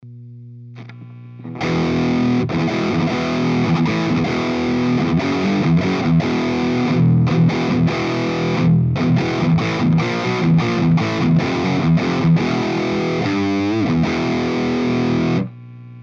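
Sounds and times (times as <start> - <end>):
XXL guitar cabinet sound: 0.8 - 15.5.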